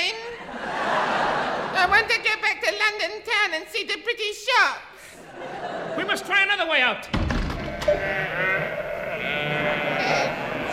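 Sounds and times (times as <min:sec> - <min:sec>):
laughter: 0:00.2 - 0:02.1, 0:05.1 - 0:06.5
speech: 0:02.9 - 0:07.3, 0:07.9 - 0:08.4
sheep bleating in a wavering chorus: 0:07.7 - 0:10.7.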